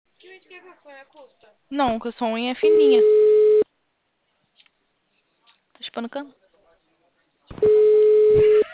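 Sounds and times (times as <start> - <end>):
speech: 0.5 - 3.4, 6.0 - 6.4
telephone ringback tone on a call: 2.6 - 3.6, 7.6 - 8.7.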